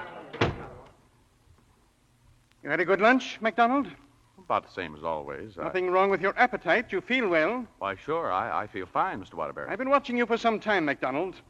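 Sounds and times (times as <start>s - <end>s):
door swinging shut with a firm thud: 0.3s - 0.9s
speech: 2.7s - 11.4s.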